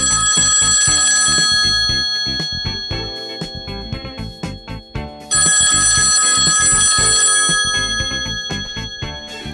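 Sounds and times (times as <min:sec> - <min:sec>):
telephone ringing with rapid metallic bell trilling: 0:00.0 - 0:09.5.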